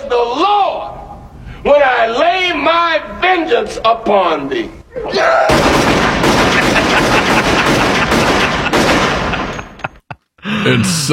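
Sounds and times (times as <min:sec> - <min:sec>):
speech: 0:00.2 - 0:00.6, 0:01.6 - 0:05.9, 0:10.4 - 0:11.1
rapid gunfire from a film scene: 0:05.5 - 0:09.6
laughter: 0:06.5 - 0:10.6.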